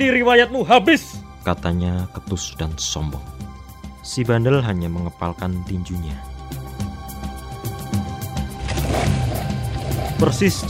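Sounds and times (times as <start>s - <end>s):
speech: 0.0s - 3.4s, 4.0s - 6.6s, 10.2s - 10.6s
motorcycle engines revving: 7.7s - 10.6s.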